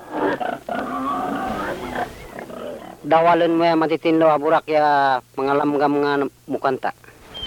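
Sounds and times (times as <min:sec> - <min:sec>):
pig grunting and oinking: 0:00.0 - 0:03.0
speech: 0:03.1 - 0:07.0.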